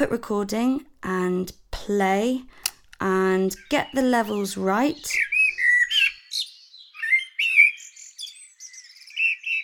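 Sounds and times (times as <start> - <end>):
speech: 0.0 - 5.3
blackbird singing: 3.2 - 9.6.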